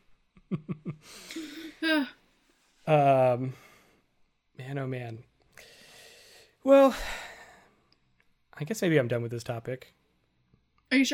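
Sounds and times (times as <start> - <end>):
speech: 0.5 - 2.1, 2.9 - 3.7, 4.6 - 5.7, 6.6 - 7.2, 8.6 - 10.0, 10.9 - 11.1
child yawning: 1.4 - 2.2.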